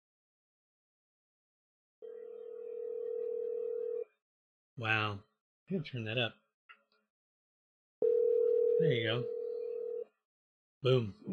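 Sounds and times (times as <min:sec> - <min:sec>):
telephone ringback tone on a phone call being placed: 0:02.0 - 0:04.0, 0:08.0 - 0:10.0
speech: 0:04.8 - 0:06.4, 0:08.8 - 0:09.4, 0:10.8 - 0:11.3.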